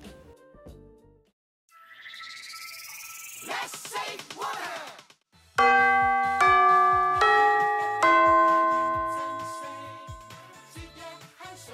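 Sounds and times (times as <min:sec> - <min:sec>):
school dismissal bell ringing a short melody: 0:05.6 - 0:10.9.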